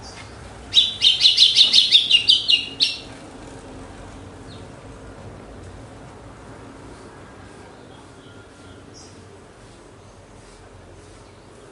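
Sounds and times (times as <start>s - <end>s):
female red-cowled cardinal singing high notes after the moult in a song contest: 0.7s - 3.1s.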